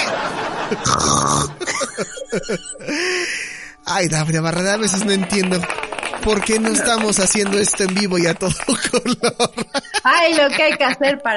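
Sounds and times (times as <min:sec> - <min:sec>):
laughter: 0:00.0 - 0:03.4, 0:04.8 - 0:11.3
speech: 0:00.7 - 0:01.1, 0:02.3 - 0:11.3
person mimicking snoring with gurgling throat noises: 0:00.8 - 0:01.7.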